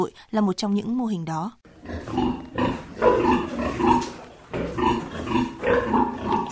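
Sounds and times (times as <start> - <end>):
speech: 0.0 - 4.2
pigs grunting and squealing at a closed-chain pig-farming cooperative in Thanh Oai district Hanoi Vietnam: 1.7 - 6.5.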